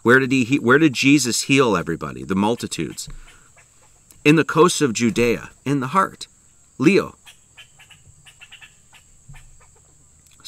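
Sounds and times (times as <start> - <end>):
speech: 0.0 - 3.3, 4.2 - 7.2
bird chirps and squeaks during a scuffle: 2.6 - 4.0, 7.2 - 10.0
dull thump: 3.0 - 3.4, 9.2 - 9.6.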